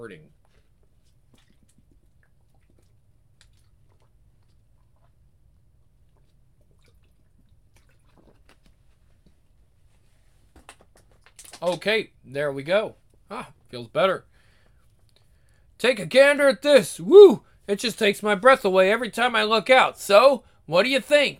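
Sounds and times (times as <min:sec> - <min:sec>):
speech: 0:00.0 - 0:00.4, 0:11.6 - 0:14.3, 0:15.8 - 0:21.3
person drinking water: 0:00.4 - 0:09.6.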